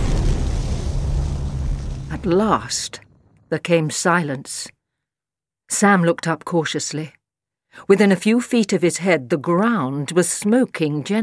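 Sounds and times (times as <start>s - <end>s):
heavy objects thudding into forest earth: 0.0s - 3.4s
speech: 2.2s - 4.8s, 5.7s - 11.2s.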